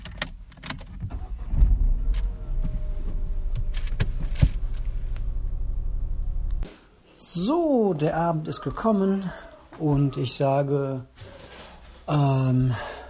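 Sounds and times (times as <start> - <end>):
car engine humming with a steady low rumble: 1.1 - 6.7
speech: 7.4 - 11.1, 12.1 - 12.9.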